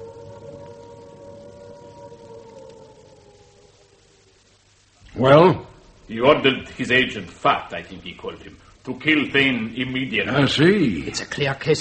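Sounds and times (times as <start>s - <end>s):
air raid siren wailing: 0.0s - 4.6s
speech: 5.2s - 11.7s.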